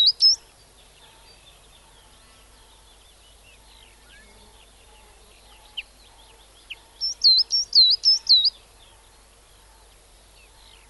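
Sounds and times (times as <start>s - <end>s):
coal tit song: 0.0s - 1.3s, 5.5s - 8.6s
faint bird twittering: 0.0s - 10.8s.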